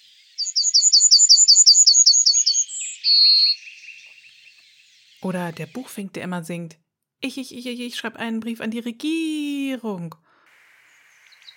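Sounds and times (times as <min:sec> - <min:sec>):
yellowhammer singing: 0:00.0 - 0:06.7
speech: 0:03.1 - 0:04.6, 0:05.2 - 0:10.2.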